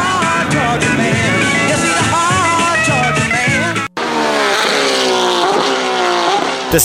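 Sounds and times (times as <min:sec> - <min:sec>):
music-like layer: 0:00.0 - 0:04.0
427-cubic-inch V8 race car engine roaring and revving: 0:00.0 - 0:06.8.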